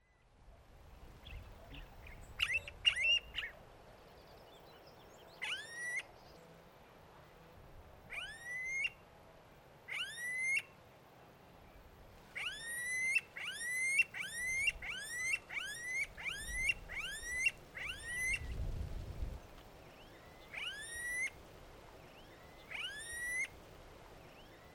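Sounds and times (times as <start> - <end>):
smooth-billed ani Crotophaga ani calling: 1.4 - 3.6, 5.4 - 6.1, 8.1 - 9.0, 9.9 - 10.7, 12.4 - 18.5, 20.0 - 21.4, 22.1 - 23.6.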